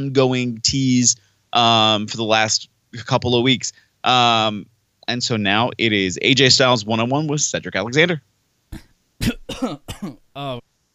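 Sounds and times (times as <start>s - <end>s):
speech: 0.0s - 10.6s
voiced throat sound: 8.7s - 10.6s
person coughing: 8.8s - 10.6s.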